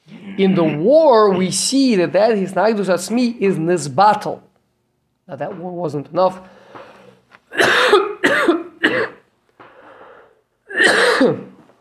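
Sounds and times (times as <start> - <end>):
speech: 0.4 - 4.5, 5.3 - 6.6, 7.5 - 8.6, 10.9 - 11.4
person coughing from a tickle in the throat: 7.5 - 9.3, 10.7 - 11.6.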